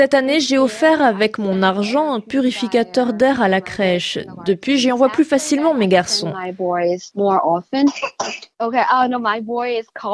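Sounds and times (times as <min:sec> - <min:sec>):
speech: 0:00.0 - 0:10.1
young child coughing: 0:07.8 - 0:08.5.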